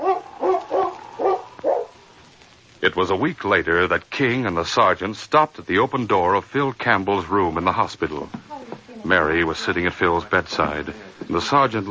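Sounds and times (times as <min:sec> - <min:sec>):
dog barking: 0:00.0 - 0:02.0
speech: 0:02.8 - 0:11.8.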